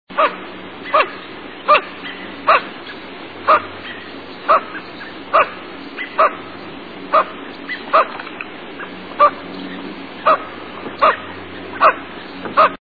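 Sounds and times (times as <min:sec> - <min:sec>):
Lesser Scaup calling: 0:00.2 - 0:02.7, 0:03.4 - 0:06.4, 0:07.1 - 0:08.2, 0:08.8 - 0:09.4, 0:10.2 - 0:12.8.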